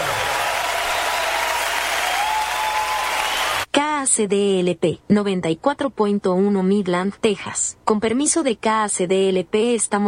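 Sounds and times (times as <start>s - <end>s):
large crowd applauding: 0.0s - 3.7s
speech: 3.8s - 10.0s.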